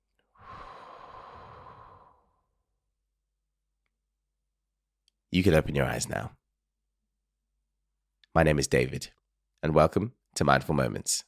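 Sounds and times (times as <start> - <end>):
slow breathy exhalation: 0.3 - 2.6
speech: 5.3 - 6.4, 8.4 - 11.2.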